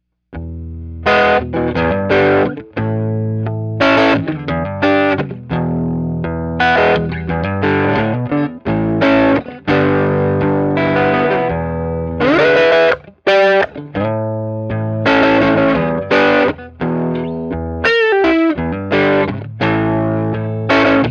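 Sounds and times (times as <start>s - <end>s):
distorted electric guitar on neck pickup: 0.0s - 21.1s.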